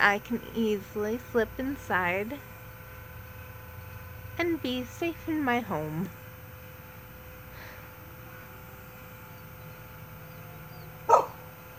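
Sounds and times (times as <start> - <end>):
speech: 0.0 - 2.5, 4.4 - 6.2
quiet steady hum: 0.0 - 11.7
dog barking: 11.0 - 11.4.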